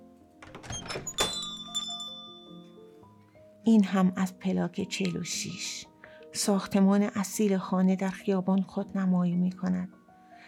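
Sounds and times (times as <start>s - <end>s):
small bell above cafe door jingling: 0.5s - 2.7s
speech: 3.7s - 10.0s.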